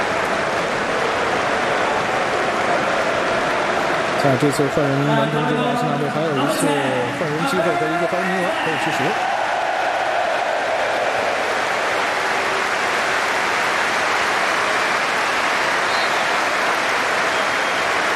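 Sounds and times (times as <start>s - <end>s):
large stadium crowd applauding warmly: 0.0s - 18.1s
faint murmur of voices: 1.8s - 9.2s
speech: 4.2s - 9.3s.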